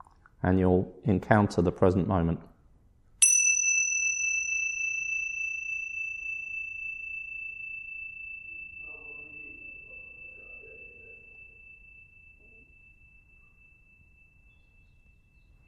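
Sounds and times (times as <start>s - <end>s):
speech: 0.4s - 2.5s
single bell strike ringing during a meditation: 3.2s - 15.6s.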